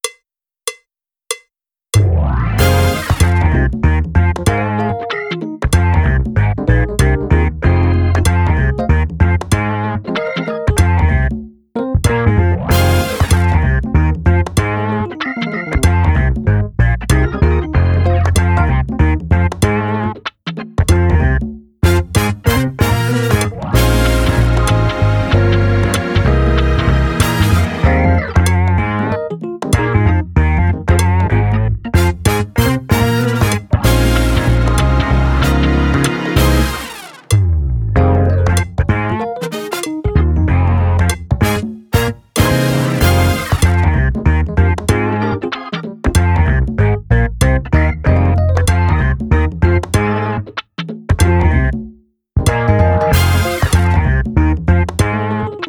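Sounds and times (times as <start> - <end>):
drumless funk music: 2.0 - 55.6.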